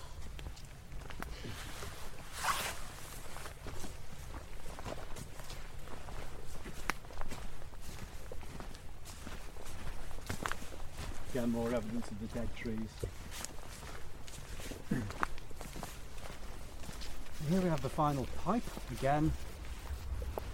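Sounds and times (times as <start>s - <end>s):
scuffing footsteps walking outdoors: 0.0s - 20.5s
speech: 11.4s - 13.5s, 17.5s - 19.5s
low rumble: 19.4s - 20.5s.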